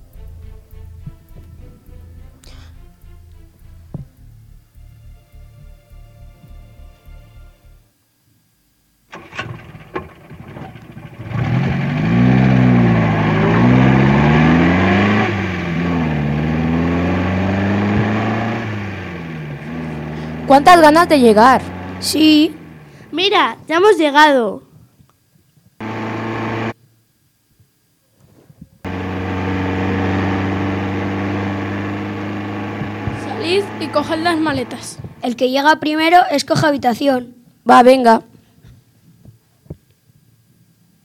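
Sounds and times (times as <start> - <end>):
car engine idling, starting and driving off at night: 9.2 - 23.1, 25.8 - 26.8, 28.9 - 35.2
speech: 20.5 - 24.6, 34.1 - 38.3.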